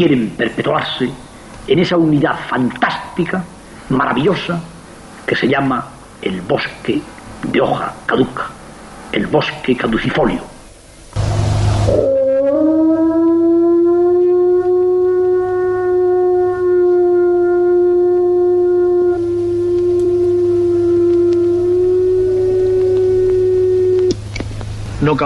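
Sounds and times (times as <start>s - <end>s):
speech: 0.0s - 4.7s, 5.3s - 10.5s, 11.9s - 12.1s
low hum: 0.0s - 25.2s
wolf howling: 11.8s - 24.2s.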